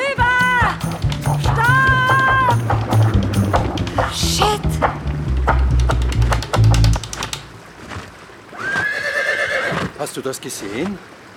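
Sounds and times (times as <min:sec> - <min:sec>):
rushing stream: 0:00.0 - 0:11.3
horse hooves clattering: 0:00.2 - 0:08.2
horse whinnying while ridden into a stream: 0:08.6 - 0:09.9
speech: 0:10.2 - 0:11.2.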